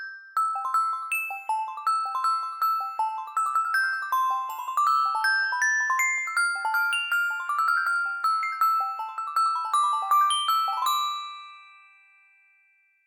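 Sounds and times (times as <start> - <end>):
ringtones: 0.5 - 10.9.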